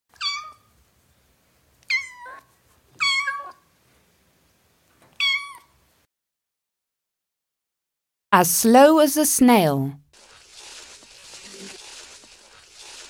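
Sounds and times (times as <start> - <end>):
kitten meowing: 0.2 - 0.7, 1.9 - 2.4, 3.0 - 3.6, 5.2 - 5.7
speech: 8.3 - 10.0.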